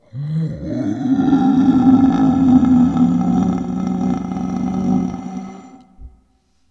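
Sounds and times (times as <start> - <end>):
monster voices moaning: 0.1 - 6.0.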